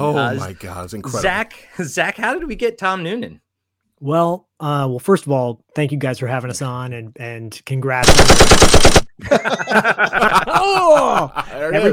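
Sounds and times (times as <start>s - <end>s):
speech: 0.0s - 3.4s, 4.0s - 11.9s
machine-gun-like gunfire sound effect: 8.0s - 9.1s
laughter: 9.2s - 11.9s.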